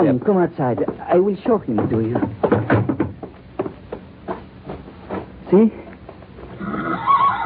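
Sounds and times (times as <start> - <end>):
speech: 0.0 - 2.8, 5.5 - 5.8
pony whinnying: 6.6 - 7.4.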